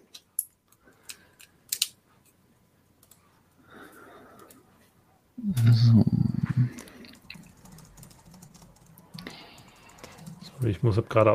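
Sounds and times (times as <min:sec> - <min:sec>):
speech: 0:05.4 - 0:06.9, 0:10.6 - 0:11.3
keys clattering on a computer keyboard: 0:06.8 - 0:10.8.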